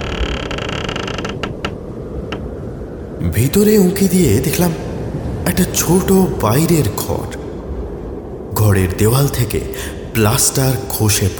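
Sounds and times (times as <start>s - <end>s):
wooden door creaking as it is pushed open: 0.0s - 2.5s
speech: 3.3s - 4.9s, 5.5s - 7.4s, 8.6s - 11.3s.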